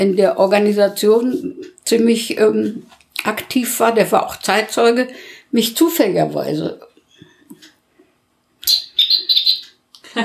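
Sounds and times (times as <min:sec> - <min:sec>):
speech: 0:00.0 - 0:06.9, 0:08.6 - 0:08.8
electronic-sounding birdsong chirping from a clock: 0:08.6 - 0:09.8
laughter: 0:10.1 - 0:10.2.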